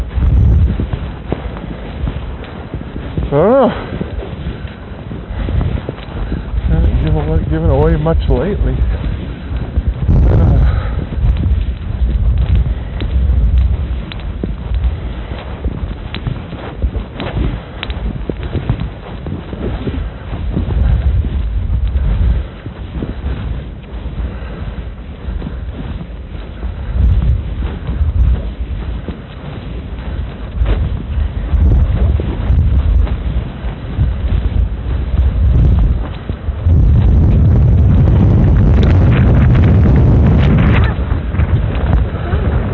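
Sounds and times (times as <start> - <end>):
strong north wind buffeting the microphone in low rumbling gusts: 0.0 - 42.7
speech: 3.3 - 3.9, 8.0 - 9.1.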